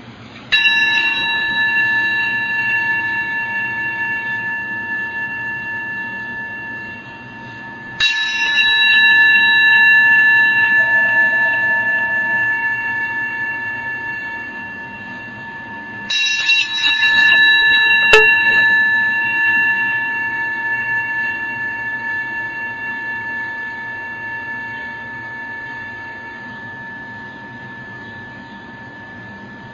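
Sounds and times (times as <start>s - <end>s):
meditation bell ringing: 0.0s - 29.7s.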